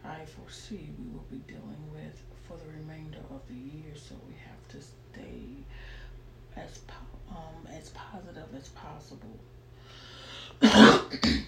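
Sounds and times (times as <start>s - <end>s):
speech: 0.3s - 6.0s, 6.6s - 11.4s
cough: 10.6s - 11.4s.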